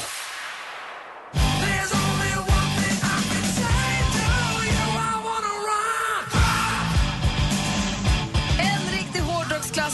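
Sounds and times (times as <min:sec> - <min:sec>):
1980s hard rock song: 0:01.3 - 0:09.9
distorted guitars: 0:01.4 - 0:05.6, 0:06.2 - 0:09.9
shouted forceful vocals: 0:02.0 - 0:07.2.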